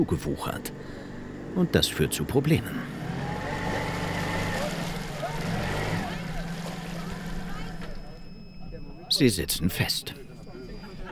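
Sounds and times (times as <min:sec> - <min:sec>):
speech: 0:00.0 - 0:03.0, 0:09.2 - 0:10.2
small boat engine chugging at half power in algae on an overgrown canal: 0:00.2 - 0:08.6.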